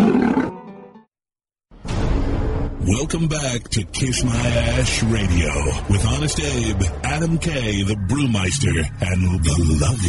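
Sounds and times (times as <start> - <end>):
big cat roaring: 0.0 - 0.6
speech: 2.9 - 10.0.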